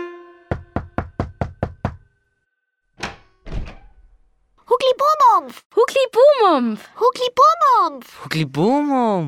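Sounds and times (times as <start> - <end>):
knocking on a wooden door: 0.5 - 2.1
speech: 5.5 - 9.2.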